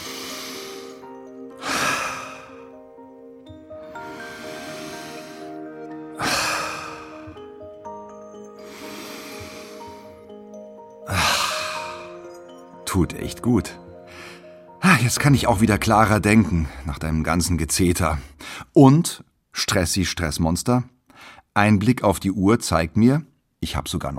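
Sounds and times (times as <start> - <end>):
deep breathing in through nose, out through mouth: 0.0 - 2.9, 3.8 - 12.4, 13.9 - 14.7, 18.2 - 18.8, 21.1 - 21.5
speech: 13.0 - 13.8, 15.0 - 21.0, 21.6 - 24.1.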